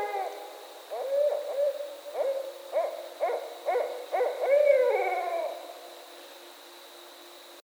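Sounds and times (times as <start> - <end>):
barred owl hooting: 0.0 - 5.8.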